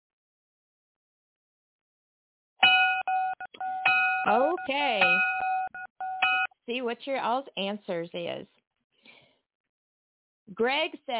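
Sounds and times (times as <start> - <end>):
bright electronic bell ringing: 2.6 - 6.6
speech: 4.2 - 5.4, 6.7 - 8.6, 10.5 - 11.1.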